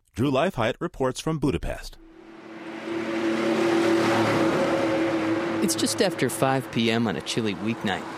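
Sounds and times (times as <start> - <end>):
speech: 0.2 - 2.0, 5.6 - 8.1
electric bus motor whine on a city street: 2.2 - 7.1.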